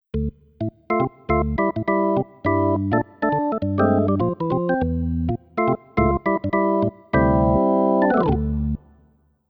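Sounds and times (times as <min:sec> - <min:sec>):
jazz organ: 0:00.2 - 0:08.8.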